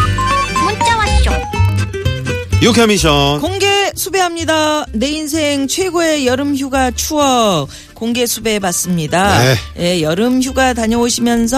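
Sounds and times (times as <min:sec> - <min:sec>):
upbeat text-message alert jingle: 0:00.0 - 0:01.8
speech: 0:02.6 - 0:11.5.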